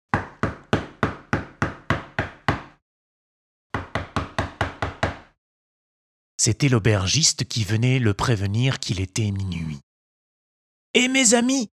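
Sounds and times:
loud knocking on a bedroom door: 0.1s - 2.8s, 3.7s - 5.4s
speech: 6.4s - 9.9s, 10.9s - 11.7s.

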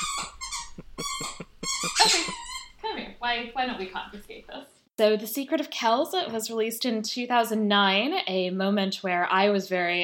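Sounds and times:
dog squeaking a squeaky toy: 0.0s - 2.8s
speech: 3.2s - 10.0s.

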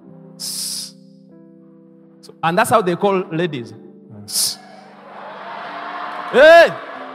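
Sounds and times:
person imitating a snake's hiss: 0.4s - 1.0s
speech: 2.3s - 4.5s, 6.3s - 6.9s.

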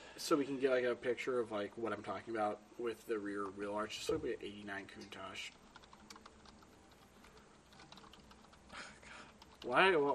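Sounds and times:
speech: 0.2s - 5.6s, 9.6s - 10.1s
typing on a computer keyboard: 5.4s - 9.8s.

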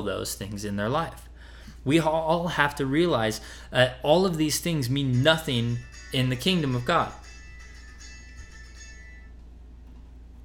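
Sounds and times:
speech: 0.0s - 7.3s
low steady hum: 0.0s - 10.4s
phone ringtone for an incoming call: 5.2s - 9.6s.

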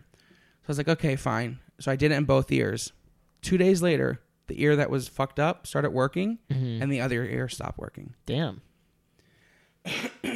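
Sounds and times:
speech: 0.7s - 8.7s, 9.8s - 10.3s
person coughing: 9.8s - 10.3s.

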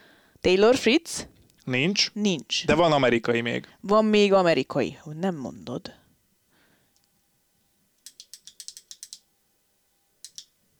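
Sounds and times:
speech: 0.4s - 6.0s
pen being clicked or fiddled with: 8.0s - 9.2s, 10.2s - 10.5s.

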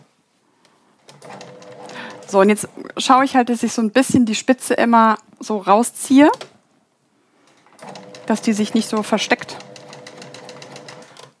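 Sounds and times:
sewing machine stitching a zigzag seam: 1.0s - 2.4s, 7.5s - 11.3s
speech: 2.3s - 6.5s, 8.3s - 9.6s.

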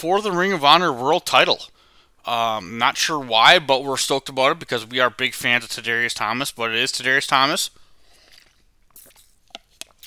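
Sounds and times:
speech: 0.0s - 7.8s
person sipping water: 7.7s - 10.0s
soft wet mouth clicks: 8.0s - 10.0s.

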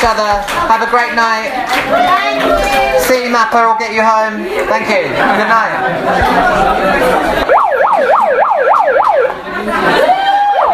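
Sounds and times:
speech: 0.0s - 7.6s
murmur of crowd chatter: 0.0s - 10.7s
laughter: 4.2s - 10.7s
siren wailing: 7.4s - 9.4s, 10.3s - 10.7s.

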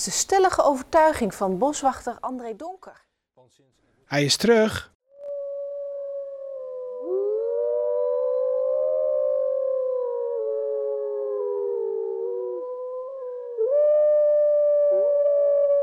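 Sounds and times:
speech: 0.0s - 4.9s
several wolves howling together: 5.2s - 15.8s.

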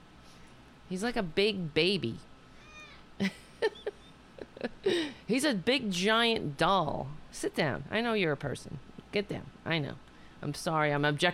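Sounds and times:
speech: 0.9s - 2.3s, 3.2s - 3.8s, 4.6s - 11.3s
cat meowing: 2.6s - 3.0s.

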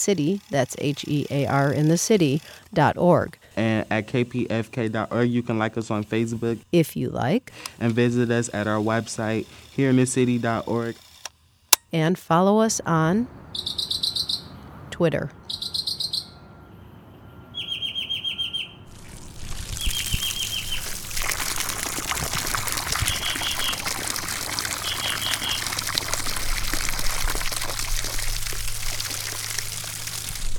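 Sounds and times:
water from a hose watering a sycamore tree's roots: 0.0s - 11.0s, 18.9s - 30.5s
speech: 0.0s - 11.1s, 11.9s - 13.9s, 15.0s - 15.4s
birds chirping: 3.6s - 10.9s, 13.1s - 30.5s.

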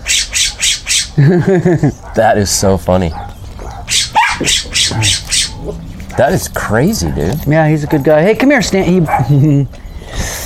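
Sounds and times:
pet bird squawking harshly: 0.0s - 1.2s, 2.0s - 7.4s
laughter: 1.2s - 2.4s, 8.8s - 9.8s
speech: 1.2s - 3.3s, 4.4s - 9.8s.

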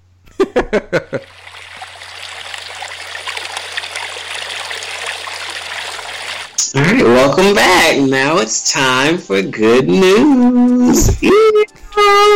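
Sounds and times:
speech: 0.7s - 1.3s, 7.4s - 12.3s
flowing stream water rushing: 1.2s - 6.6s.

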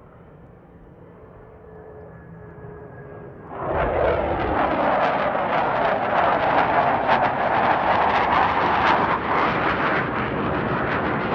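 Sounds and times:
F/A-18 Hornet military jet roaring past overhead: 2.6s - 11.3s.

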